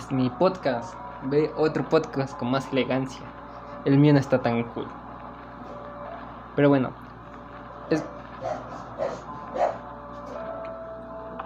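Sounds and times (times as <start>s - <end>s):
steady hum: 0.0s - 11.4s
speech: 0.1s - 5.0s, 6.6s - 7.0s, 7.9s - 8.6s
dog barking: 8.0s - 9.9s.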